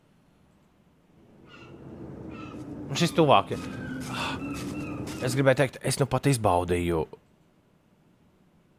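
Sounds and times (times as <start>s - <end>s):
steady low rumbling background: 1.0s - 5.9s
short bird calls: 1.4s - 5.4s
speech: 2.9s - 4.4s, 5.2s - 7.2s.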